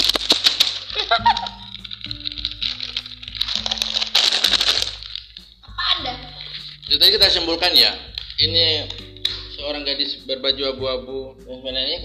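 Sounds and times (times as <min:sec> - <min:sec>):
crisp plastic crinkling ASMR: 0:00.0 - 0:09.6
soft steady low musical hum: 0:00.0 - 0:12.0
speech: 0:07.1 - 0:09.0, 0:09.6 - 0:12.0.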